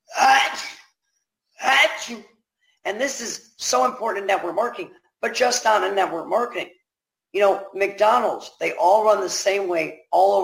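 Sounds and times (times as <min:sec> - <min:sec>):
person sneezing: 0:00.1 - 0:00.9
speech: 0:02.1 - 0:10.4.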